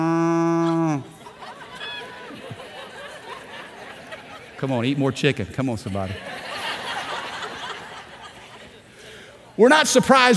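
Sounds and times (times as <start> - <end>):
human voice imitating a cow mooing: 0.0 - 1.2
laughter: 0.0 - 8.9
speech: 4.6 - 6.5, 9.6 - 10.3.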